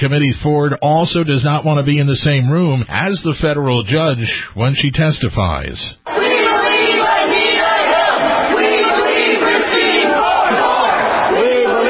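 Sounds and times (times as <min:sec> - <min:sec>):
speech: 0:00.0 - 0:06.3
crowd of demonstrators protesting a Supreme Court nomination shouting and chanting: 0:06.0 - 0:11.8.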